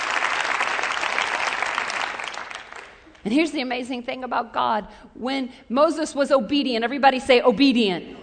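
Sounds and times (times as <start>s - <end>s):
audience clapping: 0.0s - 3.2s
speech: 3.2s - 8.2s.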